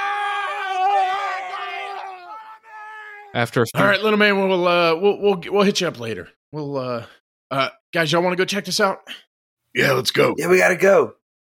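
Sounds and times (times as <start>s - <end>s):
distant person screaming in fear: 0.0s - 3.4s
speech: 3.3s - 11.2s.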